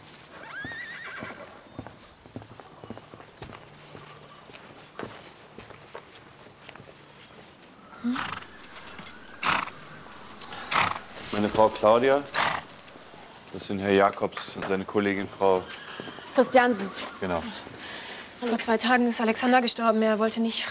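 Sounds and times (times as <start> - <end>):
horse hooves clip-clopping on a hard surface: 0.0 - 20.6
horse whinnying and neighing: 0.4 - 1.5, 7.9 - 13.4, 15.1 - 17.8
speech: 11.4 - 12.4, 13.5 - 15.8, 16.4 - 17.7, 18.4 - 20.6.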